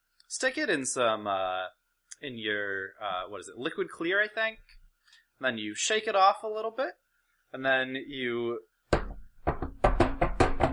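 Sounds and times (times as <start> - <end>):
speech: 0.3 - 4.8, 5.4 - 8.7
paintbrush handle slamming against wooden easel leg: 8.9 - 10.7.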